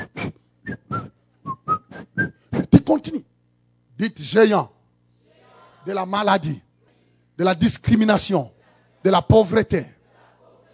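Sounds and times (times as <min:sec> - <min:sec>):
person whistling brief notes: 0:00.0 - 0:02.8
speech: 0:04.0 - 0:04.8, 0:05.8 - 0:06.6, 0:07.4 - 0:10.0.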